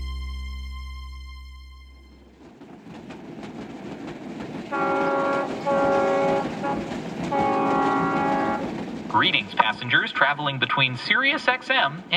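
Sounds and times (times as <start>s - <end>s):
train rumbling past: 1.8s - 12.1s
train horn blasts: 4.7s - 8.8s
speech: 9.3s - 12.1s.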